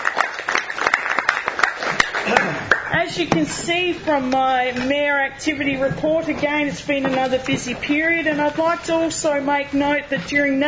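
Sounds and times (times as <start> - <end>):
audience applause at a town community meeting: 0.0 - 3.0
speech: 3.0 - 10.6.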